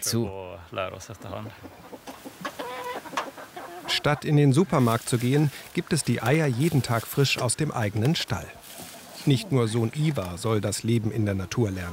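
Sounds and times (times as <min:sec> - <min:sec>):
speech: 0:00.0 - 0:02.4, 0:04.0 - 0:08.6, 0:09.2 - 0:11.9
chickens clucking: 0:00.8 - 0:11.9.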